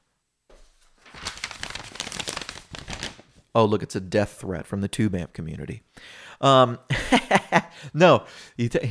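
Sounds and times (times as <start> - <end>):
folded paper airplane sheet crinkling and rustling as it is unfolded: 0.6 - 3.5
speech: 3.6 - 8.9.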